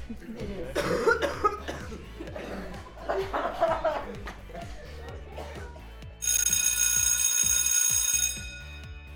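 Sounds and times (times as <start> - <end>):
laughter: 0.0 - 6.0
person coughing: 0.7 - 2.8
electronic ringing tone: 6.2 - 9.1.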